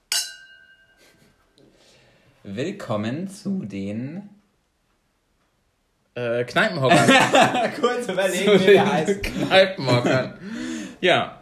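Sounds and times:
glasses clinking in a toast: 0:00.0 - 0:01.0
clear ringing tone of glasses: 0:00.1 - 0:01.0
speech: 0:02.4 - 0:04.4, 0:06.2 - 0:11.4
laughter: 0:06.9 - 0:10.9.

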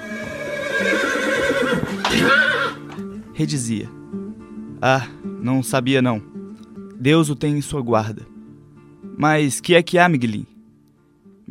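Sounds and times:
well-kept handsome horse neighing loudly: 0:00.0 - 0:02.9
speech: 0:03.4 - 0:04.0, 0:04.8 - 0:06.4, 0:07.0 - 0:08.3, 0:09.2 - 0:10.5.

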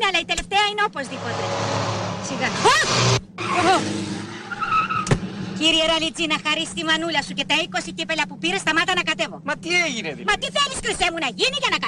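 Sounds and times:
speech: 0:00.2 - 0:04.3, 0:05.6 - 0:11.8
rally car engine roaring: 0:01.0 - 0:08.4
car tires squealing in skids at speed: 0:01.1 - 0:06.0.

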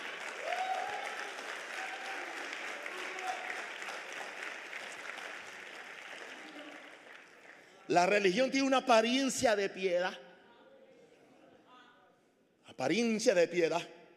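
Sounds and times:
crowd applauding: 0:00.0 - 0:08.2
speech: 0:07.9 - 0:10.2, 0:12.8 - 0:14.0.

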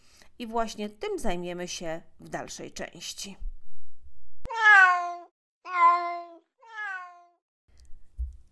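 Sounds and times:
speech: 0:00.4 - 0:03.5
cat meowing: 0:04.5 - 0:07.4.

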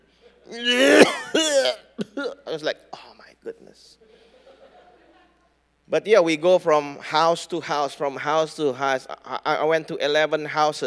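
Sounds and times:
speech: 0:00.5 - 0:01.8, 0:02.6 - 0:04.1, 0:05.9 - 0:10.8
person imitating many people coughing in a cramped house church room: 0:00.5 - 0:02.4
laughter: 0:04.0 - 0:05.5.

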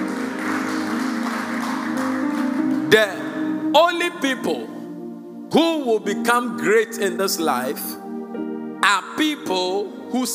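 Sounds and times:
crowd clapping: 0:00.0 - 0:03.3
sustained organ-like chords: 0:00.0 - 0:10.3
speech: 0:02.9 - 0:04.7, 0:05.5 - 0:08.0, 0:08.8 - 0:10.3.

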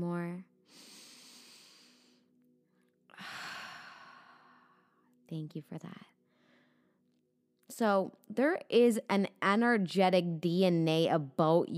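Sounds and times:
person taking deep breaths during a calming centering exercise: 0:00.6 - 0:02.3, 0:03.1 - 0:05.1
speech: 0:05.3 - 0:06.2, 0:07.7 - 0:11.7.

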